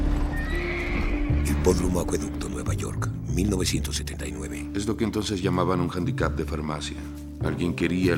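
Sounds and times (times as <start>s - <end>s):
horse neighing: 0.2s - 2.2s
speech: 1.7s - 8.1s.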